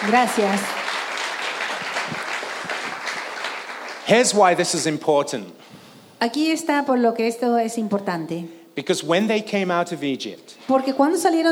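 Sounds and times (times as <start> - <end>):
speech: 0.0 - 0.8, 4.1 - 11.4
audience applause at a bilingual English-Spanish talk: 0.0 - 4.7.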